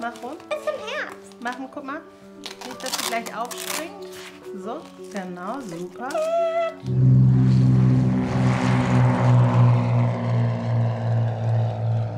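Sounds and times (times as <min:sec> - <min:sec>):
speech: 0:00.0 - 0:07.1
propeller airplane engine droning in flight: 0:06.8 - 0:12.1.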